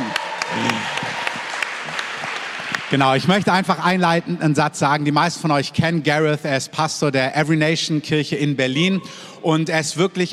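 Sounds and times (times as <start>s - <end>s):
audience applause: 0.0s - 3.4s
speech: 2.9s - 10.3s.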